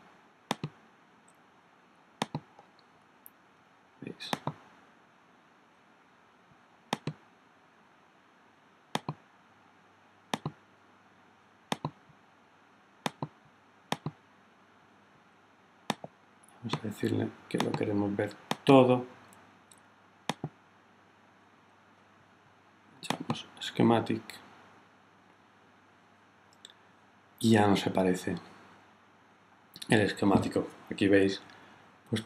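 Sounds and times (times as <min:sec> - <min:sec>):
faint steady hum: 0:00.0 - 0:32.2
computer mouse clicks: 0:00.5 - 0:01.4, 0:02.2 - 0:02.8, 0:04.3 - 0:04.6, 0:06.9 - 0:07.2, 0:08.9 - 0:09.2, 0:10.3 - 0:10.6, 0:11.7 - 0:12.0, 0:13.0 - 0:14.2, 0:15.9 - 0:16.1, 0:17.6 - 0:17.8, 0:20.3 - 0:20.6
speech: 0:04.2 - 0:04.6, 0:16.8 - 0:19.2, 0:23.9 - 0:24.4, 0:27.4 - 0:28.5, 0:29.9 - 0:32.2.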